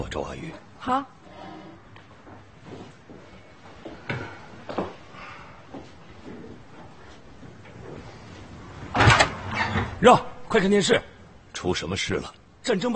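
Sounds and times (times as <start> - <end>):
speech: 0.0 - 1.2, 10.0 - 12.9
door closing with a thud: 8.9 - 10.0.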